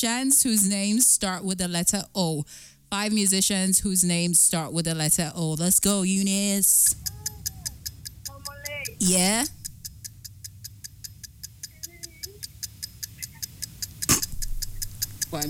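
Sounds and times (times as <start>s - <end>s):
speech: 0.0s - 7.2s, 9.0s - 9.6s
countdown clock ticking: 5.0s - 15.4s.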